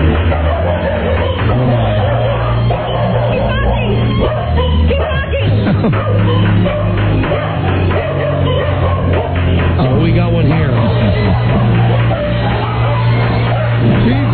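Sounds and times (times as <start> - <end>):
laughter: 0.0 - 14.3
schnauzer barking: 0.0 - 14.3.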